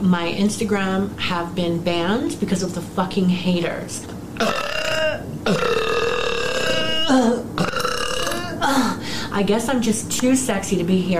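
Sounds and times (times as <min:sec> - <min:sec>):
speech: 0:00.1 - 0:05.8, 0:09.4 - 0:11.1
loud croaking burps: 0:04.4 - 0:08.7.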